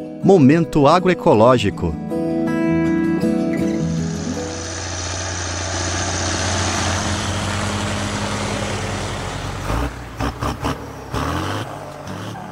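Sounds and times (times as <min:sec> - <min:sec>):
speech: 0:00.3 - 0:02.0
heavy farm machinery such as giant tractors and combine harvesters roaring: 0:03.1 - 0:12.3.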